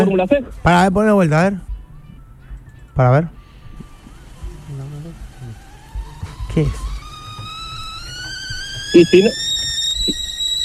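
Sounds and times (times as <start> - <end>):
speech: 0.0 - 1.7, 3.0 - 3.4, 6.6 - 6.8, 8.9 - 9.4
kettle boiling and whistling: 3.4 - 10.6.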